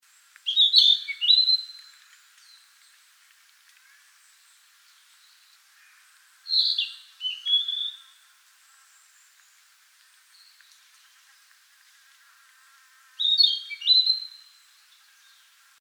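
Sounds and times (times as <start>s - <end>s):
Narcissus flycatcher singing short bright whistled phrases: 0.5s - 1.8s, 6.5s - 8.1s, 13.2s - 14.5s.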